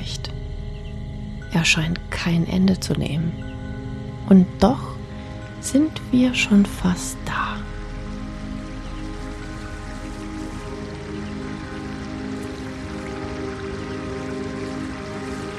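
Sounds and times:
speech: 0:01.6 - 0:03.6, 0:04.3 - 0:04.9, 0:05.6 - 0:07.7
large river rushing: 0:07.7 - 0:15.5.

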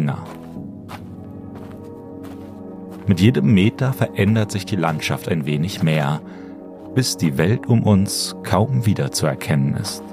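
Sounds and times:
speech: 0:00.0 - 0:00.4, 0:03.1 - 0:10.1
muffled footsteps walking: 0:00.0 - 0:07.1.

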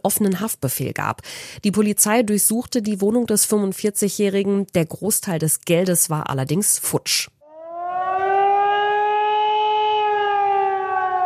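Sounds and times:
speech: 0:00.0 - 0:07.4
civil defense siren wailing: 0:07.4 - 0:11.2.

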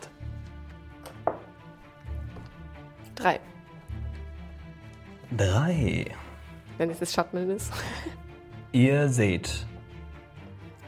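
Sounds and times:
eight-sided die tossed onto a tabletop: 0:01.1 - 0:01.6
speech: 0:03.2 - 0:03.5, 0:05.3 - 0:06.2, 0:06.8 - 0:09.7.

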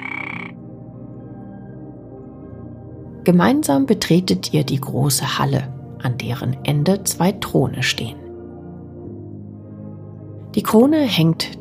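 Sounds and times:
frog croaking: 0:00.0 - 0:00.7
speech: 0:03.3 - 0:08.2, 0:10.6 - 0:11.5.

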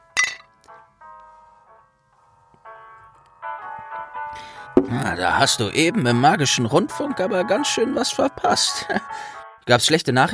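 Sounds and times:
glasses of butterbeer clinking in a toast: 0:00.2 - 0:00.5
speech: 0:04.4 - 0:10.3
laughter: 0:08.0 - 0:09.1.

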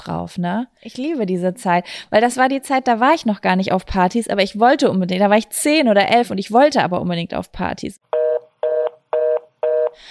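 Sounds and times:
speech: 0:00.0 - 0:08.1
electronic telephone beeps like a dropped call tone: 0:08.2 - 0:10.0.

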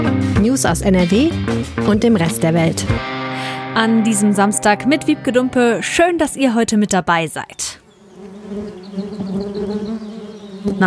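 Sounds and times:
speech: 0:00.0 - 0:07.8, 0:08.5 - 0:09.5, 0:10.6 - 0:10.8
bees buzzing together: 0:03.0 - 0:10.8.

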